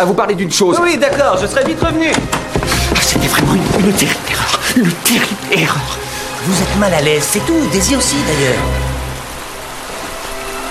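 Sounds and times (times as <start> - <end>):
speech: 0.0 - 8.9
steady rain falling: 0.0 - 10.6.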